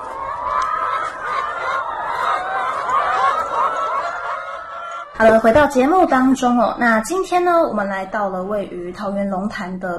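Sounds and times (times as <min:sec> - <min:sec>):
free-range egg-laying hens clucking on a pasture-raised farm in Longtan, Taoyuan: 0:00.0 - 0:06.0
speech: 0:05.2 - 0:09.9.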